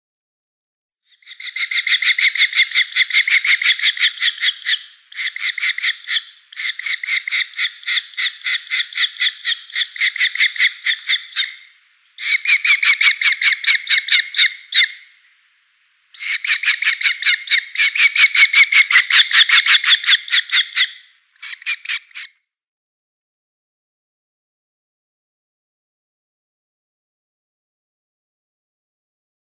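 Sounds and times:
Red-footed Falcon nestling: 1.2s - 15.1s, 16.2s - 22.3s.

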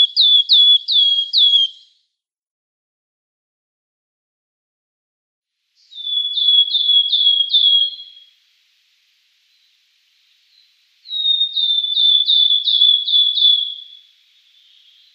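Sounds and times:
wood warbler singing: 0.0s - 1.9s, 5.8s - 8.4s, 9.4s - 15.1s.

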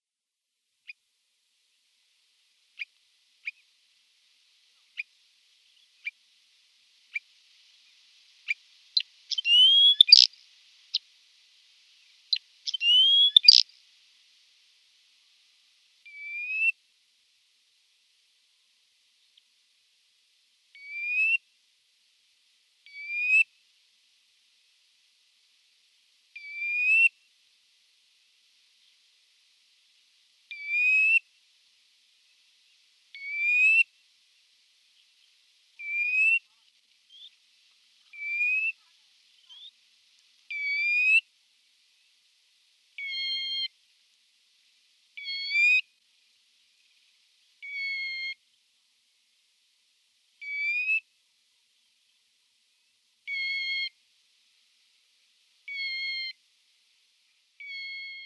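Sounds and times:
male Thick-billed Lark calling: 8.5s - 11.0s, 12.3s - 13.7s, 16.0s - 16.8s, 20.8s - 21.4s, 22.9s - 23.5s, 26.4s - 27.2s, 30.5s - 31.2s, 33.2s - 33.9s, 35.8s - 37.4s, 38.0s - 39.8s, 40.5s - 41.3s, 43.0s - 43.7s, 45.2s - 45.9s, 47.6s - 48.4s, 50.4s - 51.0s, 53.3s - 54.0s, 55.7s - 56.4s, 57.6s - 58.2s.

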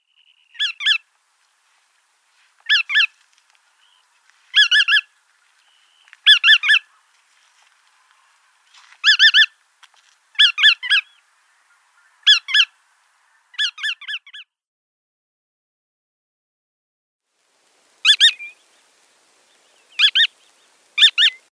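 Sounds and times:
Bar-tailed Godwit calls: 0.5s - 1.0s, 2.6s - 3.1s, 4.5s - 5.1s, 6.2s - 7.2s, 9.0s - 9.6s, 10.4s - 14.5s, 18.0s - 18.6s, 20.0s - 20.4s, 21.0s - 21.5s.

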